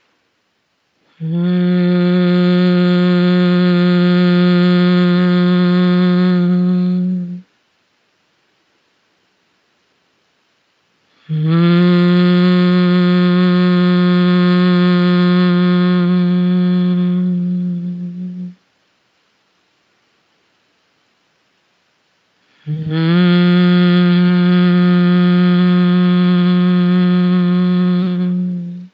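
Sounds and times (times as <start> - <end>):
person humming low notes on each out-breath: 1.1 - 7.5, 11.2 - 18.6, 22.5 - 28.9.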